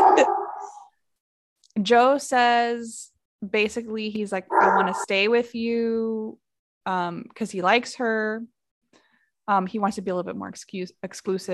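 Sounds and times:
dog barking and whining: 0:00.0 - 0:00.9, 0:04.5 - 0:05.1
speech: 0:01.8 - 0:08.6, 0:09.5 - 0:11.5.

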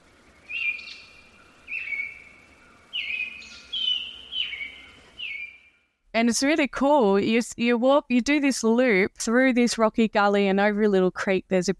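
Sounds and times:
faint hiss: 0:00.0 - 0:05.7
White-lined Honeyeater calling: 0:00.5 - 0:05.6
speech: 0:06.2 - 0:11.7.

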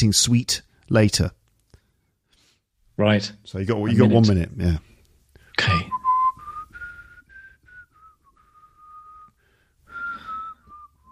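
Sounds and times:
speech: 0:00.0 - 0:01.4, 0:03.0 - 0:04.9
person whistling a wandering idle tune: 0:05.9 - 0:11.1.

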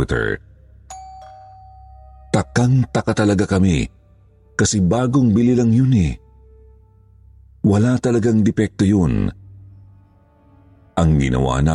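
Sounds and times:
speech: 0:00.0 - 0:00.5, 0:02.4 - 0:04.0, 0:04.6 - 0:06.2, 0:07.6 - 0:09.4, 0:11.0 - 0:11.7
newly bought two-tone electronic doorbell ringing: 0:00.9 - 0:03.1.

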